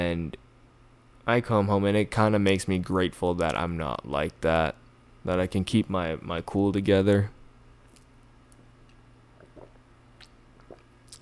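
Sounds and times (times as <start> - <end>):
speech: 0.0 - 0.4, 1.3 - 7.4
quiet hum: 0.0 - 11.2
person sipping water with soft wet gulps and swallows: 9.3 - 11.2.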